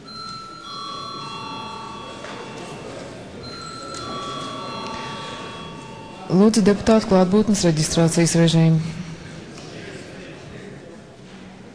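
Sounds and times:
parliament session electric bell ringing: 0:00.0 - 0:07.7
low room murmur: 0:00.0 - 0:11.7
speech: 0:06.3 - 0:09.0.

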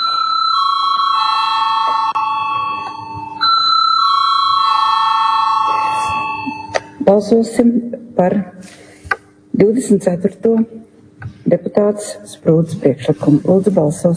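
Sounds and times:
loud electric parliament bell ringing to call a vote in the Latvian parliament: 0:00.0 - 0:07.0
speech: 0:07.1 - 0:08.8, 0:09.6 - 0:10.8, 0:11.5 - 0:14.1.

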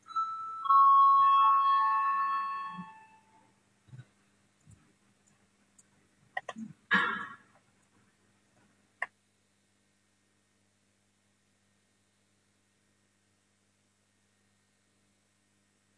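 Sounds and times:
parliamentary voting bell chime: 0:00.1 - 0:03.2.

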